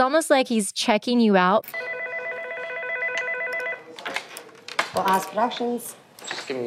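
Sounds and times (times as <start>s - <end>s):
speech: 0.0s - 2.0s, 5.0s - 6.6s
telephone ringing with a trilling electronic tone: 1.7s - 3.9s.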